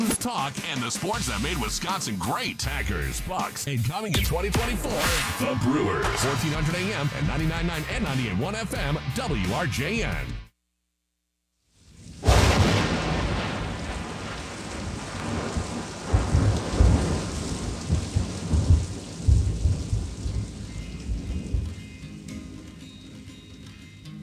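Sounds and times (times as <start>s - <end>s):
speech: 0.2s - 10.4s
heavy rain: 11.8s - 24.0s
sharp thunderclap with long rolling rumble: 12.0s - 22.5s.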